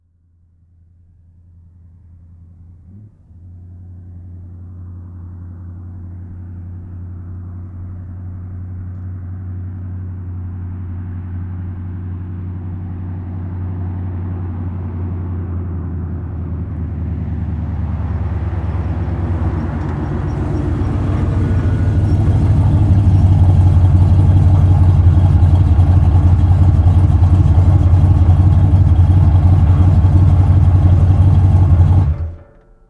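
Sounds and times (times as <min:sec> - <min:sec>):
muscle car engine idling and shutting off: 0:00.2 - 0:32.8.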